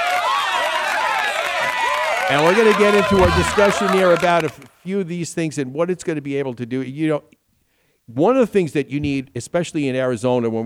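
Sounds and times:
crowd clapping: 0:00.0 - 0:04.8
speech: 0:02.3 - 0:07.4, 0:08.1 - 0:10.6.

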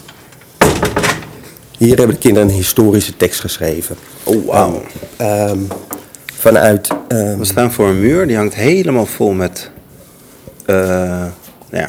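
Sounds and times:
door swinging shut with a sharp thud: 0:00.0 - 0:02.3
speech: 0:01.8 - 0:09.8, 0:10.7 - 0:11.8.

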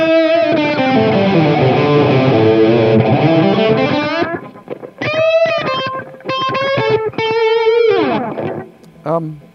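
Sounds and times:
electric guitar played through a slap echo effect: 0:00.0 - 0:09.5.

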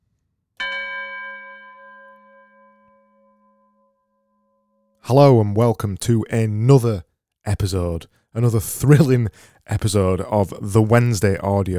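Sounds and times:
single bell struck once with rich sustained tone: 0:00.6 - 0:04.7
speech: 0:05.1 - 0:11.7.

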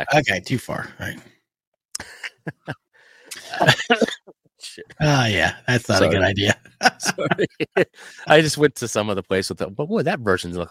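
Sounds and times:
speech: 0:00.0 - 0:01.3, 0:02.4 - 0:02.8, 0:03.6 - 0:04.2, 0:04.8 - 0:10.6
laughter: 0:02.0 - 0:04.2, 0:06.0 - 0:08.5
person coughing: 0:03.4 - 0:04.3.

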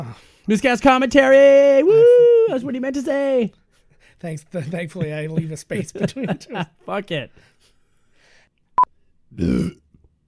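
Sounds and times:
speech: 0:00.0 - 0:03.6, 0:04.2 - 0:07.7, 0:09.3 - 0:09.8
loud low rumbling burp: 0:09.3 - 0:09.9.

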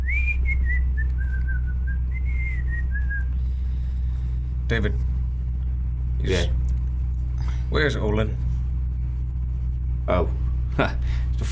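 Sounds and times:
man whistling a wandering tune to himself: 0:00.0 - 0:03.3
steady low hum: 0:00.0 - 0:11.5
speech: 0:04.7 - 0:05.2, 0:06.2 - 0:06.6, 0:07.7 - 0:08.4, 0:10.1 - 0:11.5.

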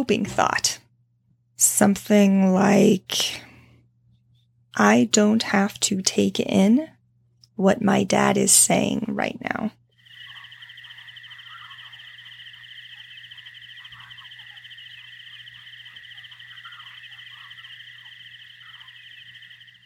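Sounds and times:
speech: 0:00.0 - 0:00.8, 0:01.6 - 0:03.5, 0:04.8 - 0:07.0, 0:07.6 - 0:09.8
faint low hum: 0:01.6 - 0:19.8
chorus of crickets chirping: 0:09.9 - 0:19.8.

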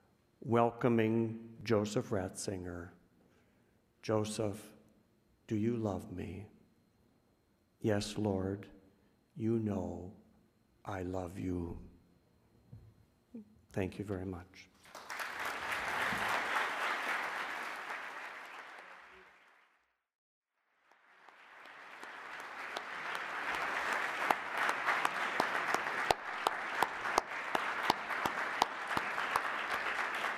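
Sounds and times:
speech: 0:00.4 - 0:03.0, 0:04.0 - 0:04.8, 0:05.5 - 0:06.5, 0:07.8 - 0:08.8, 0:09.4 - 0:10.2, 0:10.8 - 0:11.9, 0:13.4 - 0:14.7
audience applause: 0:14.8 - 0:19.8, 0:20.8 - 0:30.3.

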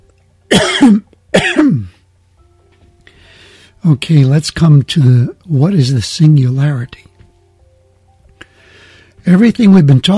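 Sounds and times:
speech: 0:00.5 - 0:01.6, 0:03.9 - 0:07.1, 0:09.2 - 0:10.1
person coughing: 0:00.5 - 0:02.0.

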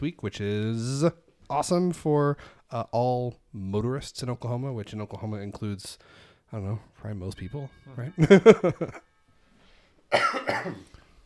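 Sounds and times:
speech: 0:00.0 - 0:09.1, 0:10.1 - 0:10.9
harsh coughs: 0:10.1 - 0:10.9.

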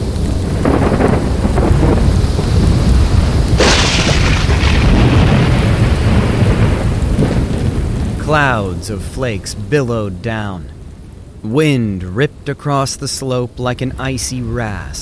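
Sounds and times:
thunderclap booming and rumbling: 0:00.0 - 0:11.4
steady rain: 0:00.0 - 0:15.0
speech: 0:08.3 - 0:10.8, 0:11.4 - 0:15.0.

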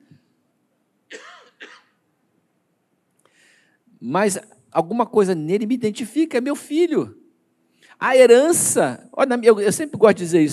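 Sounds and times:
short stifled coughs: 0:01.1 - 0:02.0
speech: 0:04.0 - 0:07.2, 0:08.0 - 0:10.5.

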